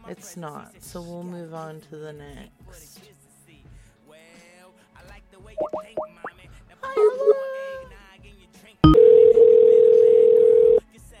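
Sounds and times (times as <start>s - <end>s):
speech: 0.1s - 3.2s
springy plopping and bouncing electronic sounds: 5.6s - 6.4s
steady telephone dial tone for a number that is not working: 8.8s - 10.8s.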